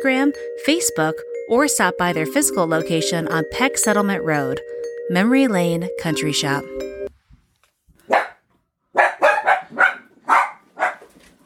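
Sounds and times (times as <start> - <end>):
speech: 0.0 - 6.9
dog barking: 8.0 - 11.2.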